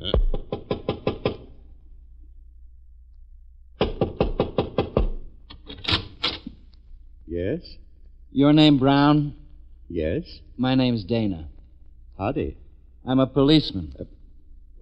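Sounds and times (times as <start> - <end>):
knocking on a door: 0.1 - 1.5, 3.8 - 5.3
speech: 7.4 - 11.5, 12.2 - 14.2.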